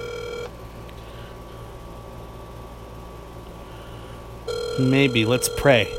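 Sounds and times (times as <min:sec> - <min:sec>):
low hum: 0:00.0 - 0:05.9
telephone dialing tones: 0:04.5 - 0:05.9
speech: 0:04.8 - 0:05.9.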